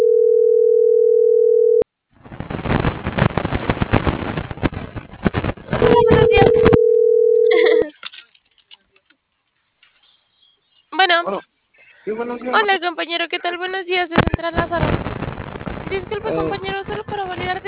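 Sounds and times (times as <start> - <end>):
telephone dial tone while a number is dialed: 0.0 - 1.8, 5.8 - 7.8
rough crackling telephone line noise: 1.9 - 7.0, 13.6 - 17.6
speech: 12.2 - 15.2, 15.9 - 17.6.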